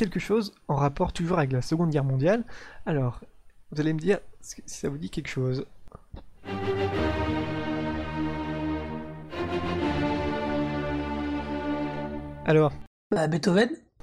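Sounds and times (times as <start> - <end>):
speech: 0.0 - 7.3, 12.5 - 14.0
full orchestra playing loud sustained chords with strings and brass: 6.4 - 12.9.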